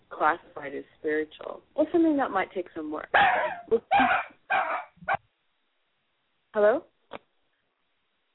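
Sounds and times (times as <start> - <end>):
speech: 0.2 - 4.8, 6.6 - 7.2
dog barking: 3.2 - 5.2.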